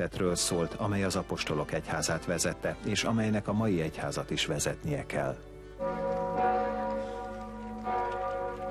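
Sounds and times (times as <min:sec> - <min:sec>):
speech: 0:00.0 - 0:06.2
church bells ringing: 0:05.6 - 0:08.6.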